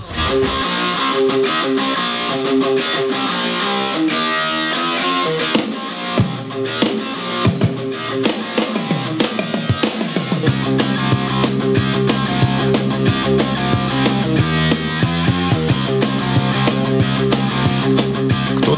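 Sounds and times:
heavier driving beat with punchy drums: 0.0 - 1.0, 6.2 - 18.7
sped-up rock song: 0.0 - 18.7.

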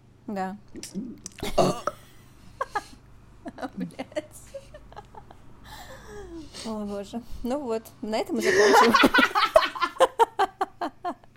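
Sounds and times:
speech: 0.3 - 1.9, 3.6 - 4.2, 6.6 - 9.3
short throaty vocal sounds: 0.7 - 2.0
guttural burp: 0.8 - 2.1
laughter: 2.6 - 5.4, 8.4 - 11.2.

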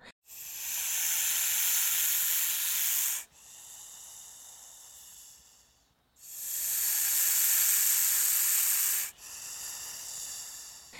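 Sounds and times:
snake hissing: 0.2 - 10.9.

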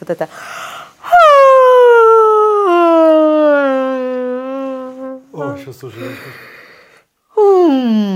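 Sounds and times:
speech: 0.0 - 0.6, 5.6 - 6.6
loud yawn with long downward-sliding voiced moan: 0.6 - 7.9.

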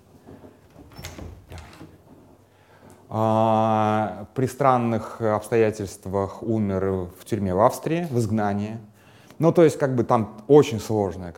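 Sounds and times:
door opening with a scrape: 0.0 - 2.4
soft knocks and clatters: 0.0 - 3.1
speech: 3.1 - 11.3.

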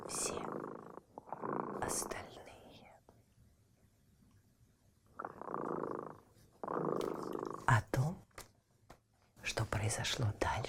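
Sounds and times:
cat purring: 0.0 - 3.0, 5.0 - 7.8
speech: 9.9 - 10.6.

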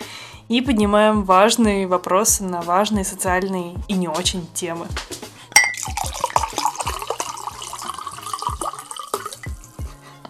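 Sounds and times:
speech: 0.5 - 5.2
wine glugging and splashing into a 0.5-litre mug: 5.5 - 9.8
small clinks: 5.6 - 6.0
wine dripping: 5.6 - 9.8.

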